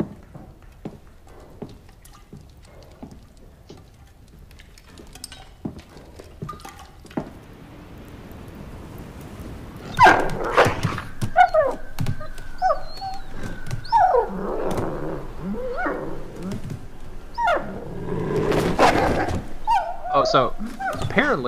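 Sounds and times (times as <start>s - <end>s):
dog barking: 9.9s - 16.4s, 17.3s - 17.9s, 18.7s - 21.2s
dog whining and yelping: 9.9s - 21.2s.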